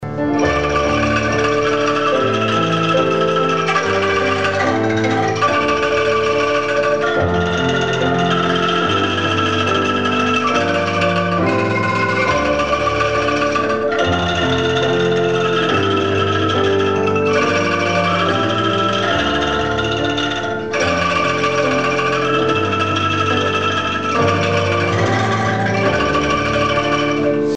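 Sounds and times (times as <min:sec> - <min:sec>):
angklung: 0:00.0 - 0:27.5.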